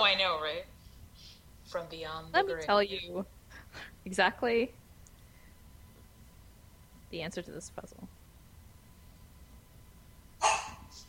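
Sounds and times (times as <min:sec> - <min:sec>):
speech: 0:00.0 - 0:00.8, 0:01.7 - 0:04.8, 0:07.1 - 0:08.1
pet dog barking: 0:10.4 - 0:11.0.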